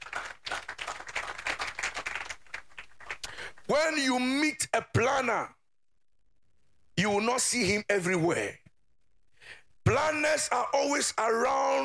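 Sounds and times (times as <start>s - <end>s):
audience clapping hands in applause: 0.0s - 3.7s
speech: 3.7s - 5.6s, 7.0s - 8.6s, 9.9s - 11.8s.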